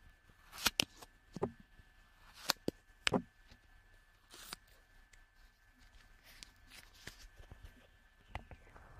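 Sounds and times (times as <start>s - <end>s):
scissors cutting through soft clay: 0.4s - 1.1s, 2.2s - 3.2s.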